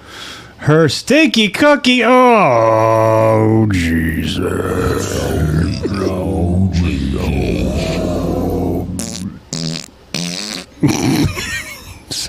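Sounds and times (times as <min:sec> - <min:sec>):
speech: 0:00.6 - 0:07.6
long loud sputtering fart: 0:08.9 - 0:11.3.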